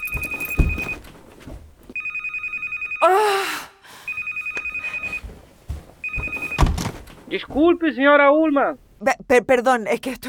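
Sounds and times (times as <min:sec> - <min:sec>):
mobile phone ringing with a rapid electronic trill: 0:00.0 - 0:01.0, 0:02.0 - 0:03.1, 0:04.1 - 0:05.3, 0:06.0 - 0:06.7
soft thumps and rustles: 0:00.0 - 0:02.0, 0:05.1 - 0:07.8
speech: 0:07.3 - 0:10.2.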